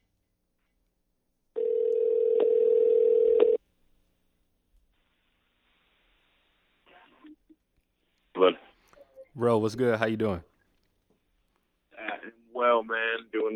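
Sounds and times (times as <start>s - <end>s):
ringback tone from an outgoing phone call: 1.6s - 3.6s
speech: 9.4s - 10.5s, 12.9s - 13.5s.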